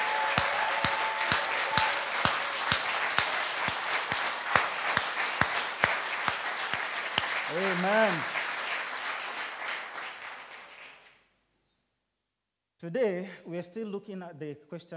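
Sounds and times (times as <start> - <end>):
audience applauding: 0.0 - 11.2
speech: 7.6 - 8.4, 12.8 - 14.9.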